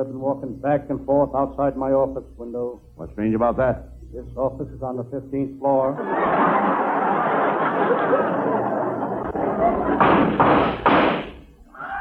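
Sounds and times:
speech: 0:00.0 - 0:07.2, 0:07.8 - 0:08.8
room noise: 0:00.0 - 0:11.9
laughter: 0:05.9 - 0:10.4
gunshots outside an office: 0:10.0 - 0:11.5.

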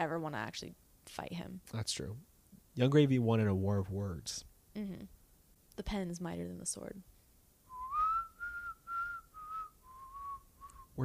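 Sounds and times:
speech: 0:00.0 - 0:05.2, 0:05.8 - 0:07.1
person whistling a TV theme tune: 0:07.7 - 0:11.0.

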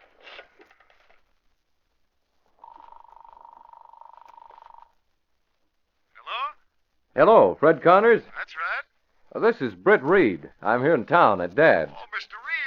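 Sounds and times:
telephone ringing on the line: 0:02.6 - 0:05.0
speech: 0:07.2 - 0:08.6, 0:09.3 - 0:12.1.

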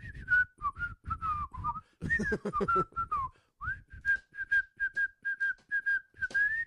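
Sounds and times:
person whistling a sitcom theme tune: 0:00.0 - 0:06.6.

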